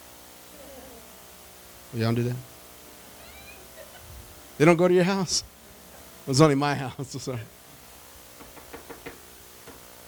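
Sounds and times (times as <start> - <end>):
steady hiss: 0.0 - 10.0
speech: 1.9 - 2.5, 4.6 - 5.5, 6.3 - 7.6
laughter: 2.9 - 7.6
knocking on a door: 8.4 - 9.9.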